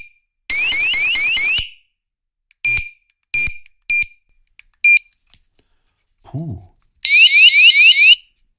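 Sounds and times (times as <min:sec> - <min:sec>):
loud electronic alarm from a handheld device: 0:00.5 - 0:01.8, 0:07.1 - 0:08.2
speech: 0:06.4 - 0:06.7.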